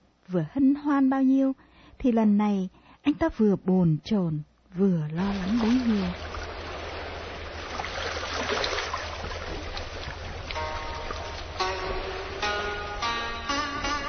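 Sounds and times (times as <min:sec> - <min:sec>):
speech: 0:00.3 - 0:06.3
river water swishing and lapping around a small rowed sampan: 0:05.2 - 0:13.4.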